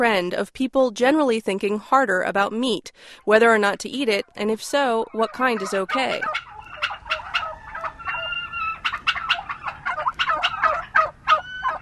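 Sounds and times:
speech: 0.0s - 6.5s
faint outdoor hum: 0.0s - 11.7s
flock of turkeys gobbling in a pasture: 4.2s - 11.7s.

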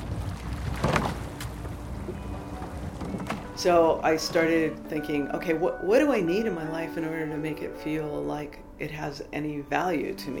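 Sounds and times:
rowing boat oars dipping and pulling through water: 0.0s - 3.6s
steady low rumble of wind and water: 0.0s - 10.3s
speech: 3.6s - 10.3s.

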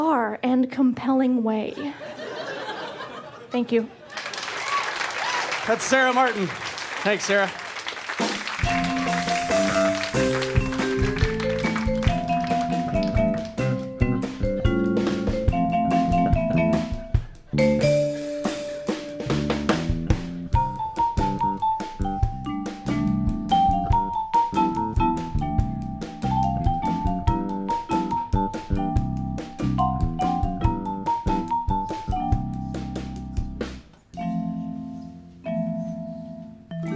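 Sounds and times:
speech: 0.3s - 2.2s, 3.5s - 4.3s, 5.6s - 7.6s
laughter: 1.8s - 4.8s
marimba playing a lively melodic tune: 8.6s - 36.9s.

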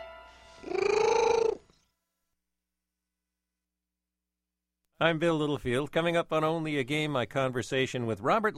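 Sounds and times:
brief higher wavering vocal sound: 0.6s - 1.7s
domestic cat purring loudly: 0.6s - 1.7s
speech: 5.0s - 8.5s.

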